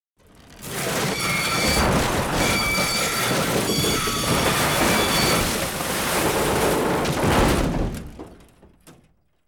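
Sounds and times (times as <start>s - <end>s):
metal stress creak foley effect: 0.9s - 7.2s.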